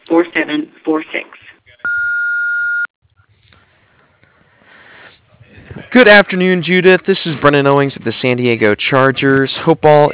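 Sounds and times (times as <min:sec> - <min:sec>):
speech: 0:00.1 - 0:01.4, 0:06.0 - 0:10.1
answering machine beep: 0:01.8 - 0:02.9.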